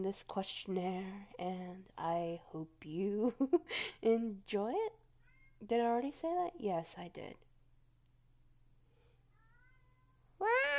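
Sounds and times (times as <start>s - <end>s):
speech: 0.0s - 5.0s, 5.6s - 7.4s
steady low hum: 0.0s - 10.6s
cat meowing at a door: 10.4s - 10.7s.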